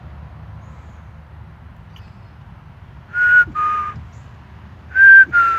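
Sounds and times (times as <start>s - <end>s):
person whistling clear notes: 3.2s - 4.0s, 5.0s - 5.5s.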